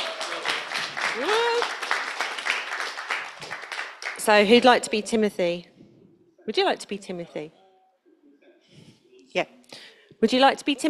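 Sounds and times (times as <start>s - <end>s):
audience clapping for volunteers: 0.0s - 4.6s
person whooping in the crowd: 1.1s - 1.7s
speech: 1.2s - 1.6s, 4.2s - 5.7s, 6.4s - 7.6s, 9.3s - 9.6s, 10.2s - 10.8s.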